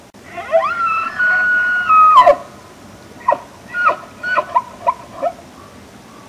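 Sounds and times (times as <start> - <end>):
elk call: 0.2 - 2.5, 3.2 - 5.4.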